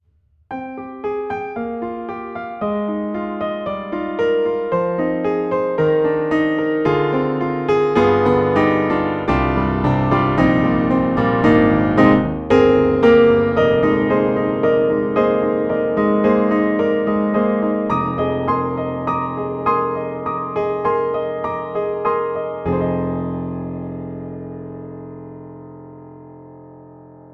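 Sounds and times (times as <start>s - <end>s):
Pianoteq D4 Classical AB piano: 0.0s - 27.3s.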